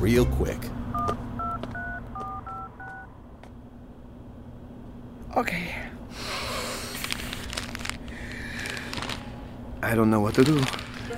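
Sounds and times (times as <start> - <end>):
speech: 0.0 - 0.8, 5.4 - 5.8, 9.9 - 10.8
low hum: 0.0 - 11.1
phone keypad two-tone beeps dialing a number: 1.0 - 3.1.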